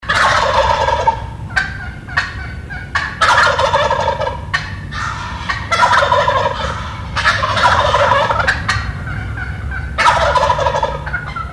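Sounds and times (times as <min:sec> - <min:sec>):
turkey gobbling: 0:00.0 - 0:11.5.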